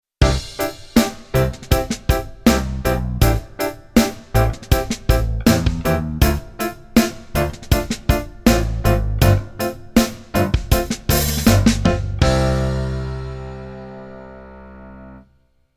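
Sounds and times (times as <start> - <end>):
keyboard piano pops: 0.2 - 12.7.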